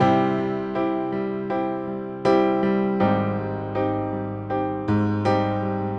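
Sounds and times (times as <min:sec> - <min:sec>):
1970s-style piano ballad: 0:00.0 - 0:05.9.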